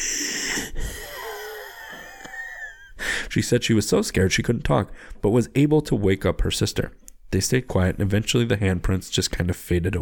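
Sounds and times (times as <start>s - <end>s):
wet wheezing breathing: 0.0s - 3.3s
speech: 3.4s - 10.0s.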